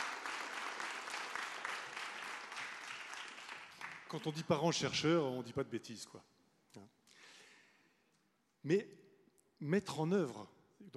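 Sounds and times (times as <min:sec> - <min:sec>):
audience applause: 0:00.0 - 0:04.2
speech: 0:04.1 - 0:07.0, 0:08.6 - 0:09.0, 0:09.6 - 0:10.9.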